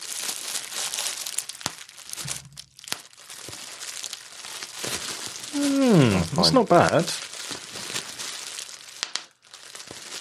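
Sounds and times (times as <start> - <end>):
bubble wrap crinkling and rustling: 0.0 - 10.1
speech: 5.6 - 7.2.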